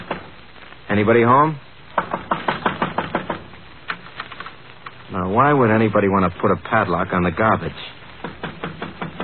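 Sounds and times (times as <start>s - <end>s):
speech: 1.0s - 1.6s, 5.2s - 8.0s
knocking on a small wooden shed door: 2.0s - 3.5s, 8.2s - 9.2s.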